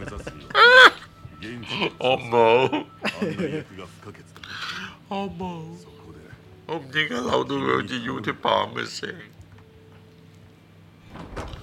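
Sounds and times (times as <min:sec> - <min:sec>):
laughter: 0:00.0 - 0:01.1, 0:01.7 - 0:03.8
low hum: 0:00.0 - 0:11.6
speech: 0:01.4 - 0:04.4, 0:05.1 - 0:06.0, 0:06.7 - 0:09.4
door sliding or swinging open with a soft rumbling whoosh: 0:11.0 - 0:11.6.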